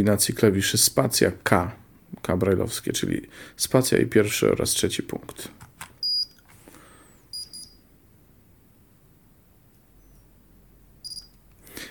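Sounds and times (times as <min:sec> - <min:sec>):
speech: 0:00.0 - 0:05.7
Braille keyboard power-on beeps: 0:07.3 - 0:07.8, 0:11.0 - 0:11.3.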